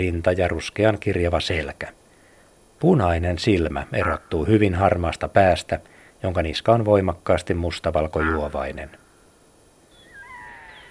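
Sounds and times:
speech: 0.0 - 2.0, 2.8 - 9.0
faint hiss: 0.0 - 10.9
red-throated loon wailing call: 8.2 - 9.3, 9.9 - 10.9.

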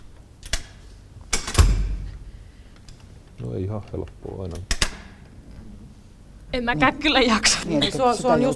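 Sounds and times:
door shutting thud: 1.4 - 2.2
speech: 3.4 - 4.8, 6.5 - 8.5.

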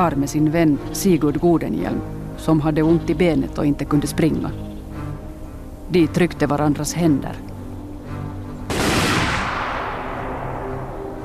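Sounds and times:
speech: 0.0 - 4.7, 5.9 - 7.5
volley of rifle fire with rolling echo: 8.7 - 11.0.

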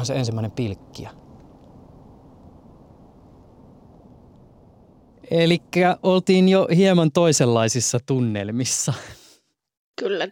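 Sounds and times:
speech: 0.0 - 1.2, 5.3 - 9.2, 10.0 - 10.3
distant low rumbling city hum by the seashore: 0.0 - 7.6
faint airy hiss: 0.0 - 7.6.

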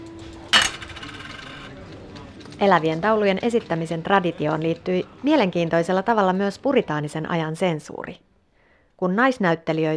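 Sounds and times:
single coin clinking into a cup: 0.5 - 1.8
speech: 2.6 - 8.3, 9.0 - 9.9.

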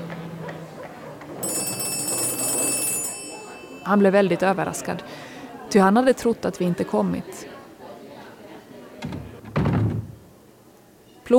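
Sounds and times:
telephone bell ringing: 1.4 - 4.6
speech: 3.9 - 7.6.

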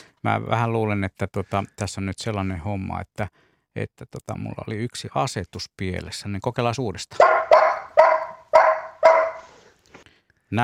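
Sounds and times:
speech: 0.2 - 7.5
person imitating a dog barking: 7.2 - 9.5.

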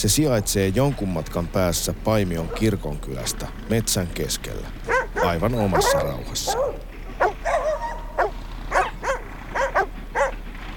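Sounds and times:
speech: 0.0 - 6.8
several dogs barking in an outdoor kennel: 2.3 - 3.4, 4.7 - 10.7.

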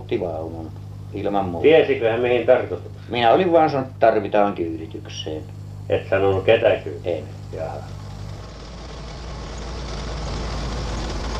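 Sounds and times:
speech: 0.1 - 8.0
car speeding along country roads in Finland: 7.4 - 11.3.

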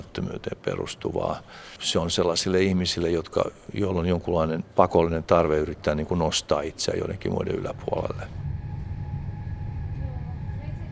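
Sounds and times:
speech: 0.1 - 8.5
low rumble inside a moving passenger train: 7.0 - 10.9.

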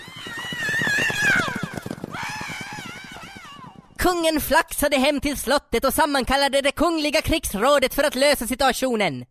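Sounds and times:
woman screaming: 0.0 - 3.8
horses galloping away over a plain: 0.0 - 5.0
speech: 4.0 - 9.2.

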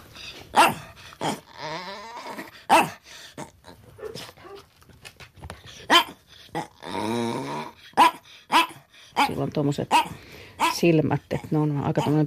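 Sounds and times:
dog whining and yowling: 0.2 - 4.7, 5.7 - 10.8
dog barking sharply and loudly: 0.5 - 1.4, 2.7 - 3.0, 4.0 - 4.7, 5.9 - 6.2, 8.0 - 10.8
speech: 9.6 - 10.2, 10.8 - 12.2.

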